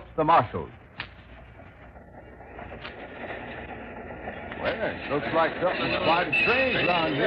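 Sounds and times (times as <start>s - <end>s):
train rumbling and hissing: 0.0s - 7.2s
speech: 0.2s - 0.8s, 4.6s - 7.2s
faint metallic squeals: 2.2s - 7.2s.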